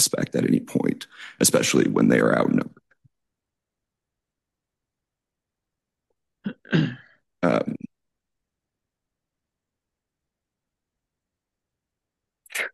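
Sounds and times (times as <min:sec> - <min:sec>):
speech: 0:00.0 - 0:02.8, 0:06.7 - 0:07.9
person sneezing: 0:06.5 - 0:07.1.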